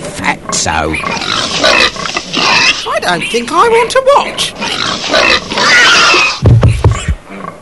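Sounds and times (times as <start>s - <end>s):
pig grunting and snorting: 0.5s - 2.9s, 4.6s - 7.6s
speech: 0.6s - 6.5s
pig squealing as it is slaughtered by a butcher: 0.9s - 3.5s, 4.3s - 7.6s.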